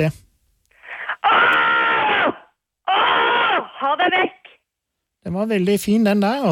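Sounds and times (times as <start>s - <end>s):
speech: 0.0s - 0.2s, 3.8s - 4.4s, 5.2s - 6.5s
man screaming loud raw roars: 1.0s - 4.6s.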